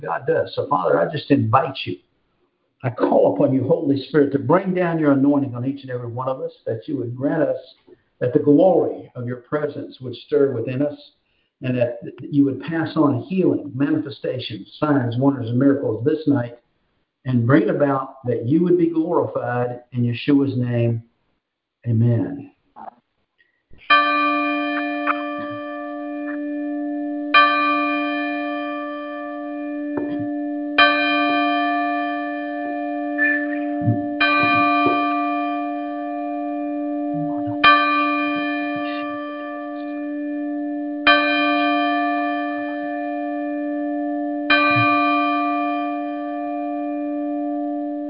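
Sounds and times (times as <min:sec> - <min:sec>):
church bell tolling: 0:00.0 - 0:01.7, 0:02.9 - 0:07.5, 0:23.9 - 0:48.0
speech: 0:00.0 - 0:02.1, 0:02.8 - 0:16.6, 0:17.2 - 0:21.1, 0:21.8 - 0:23.0.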